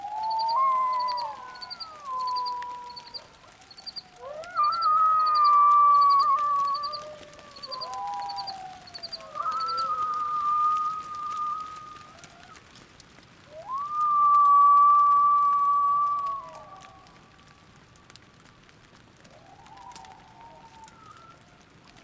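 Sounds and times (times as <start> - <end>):
coyotes howling in Organ Pipe National Monument, southern Arizona: 0.0 - 22.0
rapid high chirping: 0.2 - 4.0, 4.6 - 7.0, 7.6 - 9.9.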